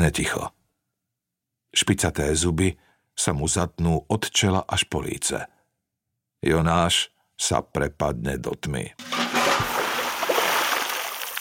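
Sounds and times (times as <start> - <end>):
speech: 0.0 - 0.6, 1.7 - 5.6, 6.4 - 9.2
splash of water poured over someone: 9.0 - 11.3.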